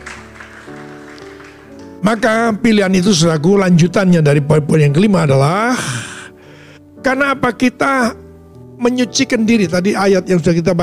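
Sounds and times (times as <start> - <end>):
audience applause: 0.0 - 2.0
sustained keyboard chords: 0.0 - 10.8
speech: 2.0 - 6.1, 7.0 - 8.2, 8.8 - 10.8.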